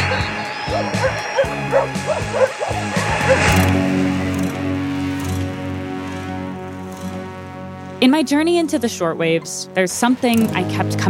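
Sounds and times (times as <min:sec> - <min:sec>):
dogs barking: 0:00.0 - 0:03.6
droning electronic music on pirate radio: 0:00.0 - 0:11.0
speech: 0:08.0 - 0:11.0.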